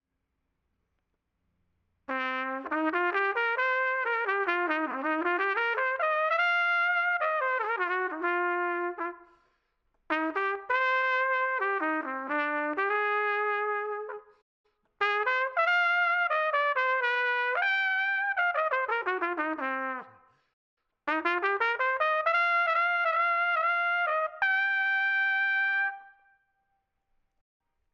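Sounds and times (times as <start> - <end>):
trumpet practice: 2.1 - 9.2, 10.1 - 14.3, 15.0 - 20.2, 21.1 - 26.3.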